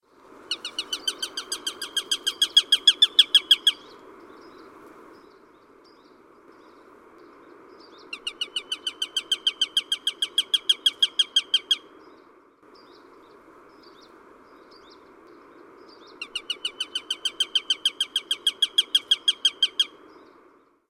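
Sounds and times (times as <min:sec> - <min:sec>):
sparrowhawk call: 0:00.5 - 0:04.0, 0:08.1 - 0:11.8, 0:16.2 - 0:19.9.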